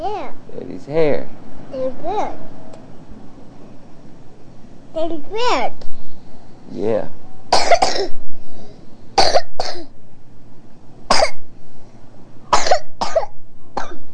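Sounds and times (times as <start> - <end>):
speech: 0.0 - 2.6, 5.0 - 6.0, 6.7 - 8.2
young child coughing: 7.5 - 8.2, 9.2 - 9.9, 11.1 - 11.5, 12.5 - 14.1.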